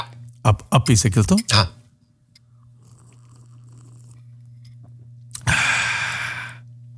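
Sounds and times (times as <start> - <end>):
speech: 0.4 - 1.8
slurping a hot drink: 2.6 - 4.8.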